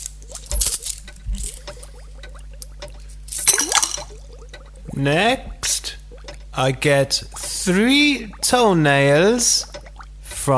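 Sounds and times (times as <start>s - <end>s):
hot water sloshing and bubbling in a pot: 0.0s - 10.5s
coin plopping into a pot of hot water: 0.2s - 4.8s
speech: 5.0s - 5.8s, 6.6s - 9.7s.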